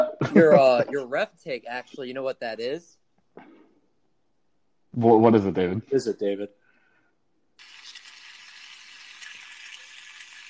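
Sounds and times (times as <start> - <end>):
laughter: 0.0 - 1.2
speech: 0.4 - 3.5, 5.0 - 6.6
bacon sizzling in a hot frying pan: 7.6 - 10.4.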